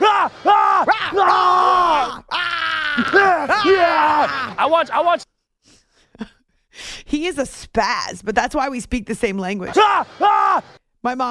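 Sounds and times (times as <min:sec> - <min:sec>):
person imitating a quarterback's pregame yell with hoarse shouts and grunts: 0:00.0 - 0:05.2, 0:09.7 - 0:10.7
speech: 0:03.5 - 0:05.3, 0:07.0 - 0:11.3.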